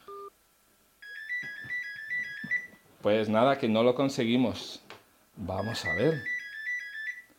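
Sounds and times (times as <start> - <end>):
telephone ringing with an electronic warbling ringtone: 1.0 - 2.8, 5.5 - 7.3
speech: 3.0 - 4.8, 5.4 - 6.3.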